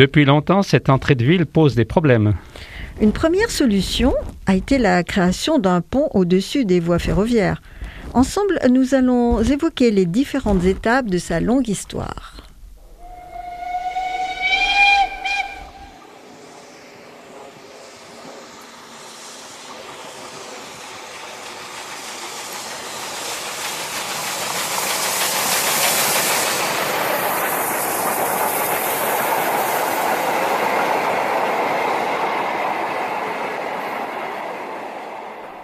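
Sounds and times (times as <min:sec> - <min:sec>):
speech: 0:00.0 - 0:12.3
rumble and hiss of a passing steam train: 0:00.9 - 0:11.8, 0:12.8 - 0:35.6
steam train whistle shrieking: 0:13.0 - 0:16.7.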